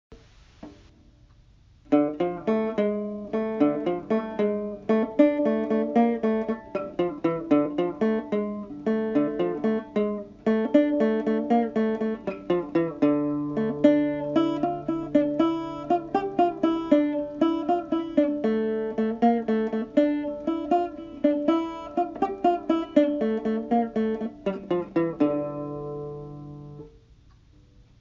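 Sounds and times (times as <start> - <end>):
tenor banjo: 1.9 - 27.0.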